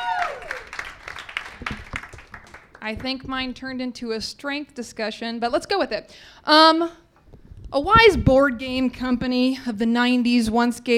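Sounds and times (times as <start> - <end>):
high whistle or cheer: 0.0 - 0.7
audience applauding: 0.0 - 2.8
speech: 2.8 - 7.0, 7.7 - 10.9.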